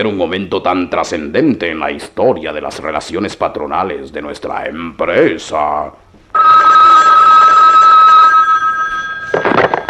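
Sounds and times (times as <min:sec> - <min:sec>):
speech: 0:00.0 - 0:06.0
telephone bell ringing: 0:06.3 - 0:09.8.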